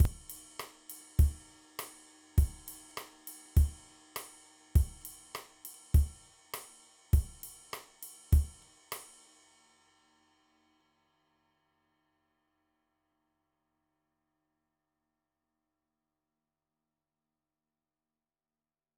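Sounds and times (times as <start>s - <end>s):
mambo drum beat: 0.0s - 0.4s, 1.2s - 1.4s, 2.4s - 2.8s, 3.6s - 3.8s, 4.8s - 5.1s, 6.0s - 6.2s, 7.2s - 7.5s, 8.3s - 8.6s.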